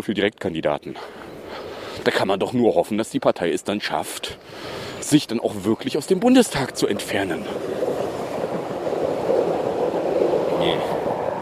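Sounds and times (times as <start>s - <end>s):
speech: 0.0s - 7.8s
commuter train rumbling past outside: 6.4s - 11.4s.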